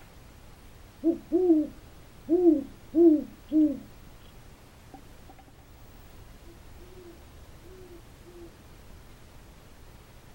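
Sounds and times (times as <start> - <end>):
owls hooting: 1.0 - 3.9, 6.4 - 8.6.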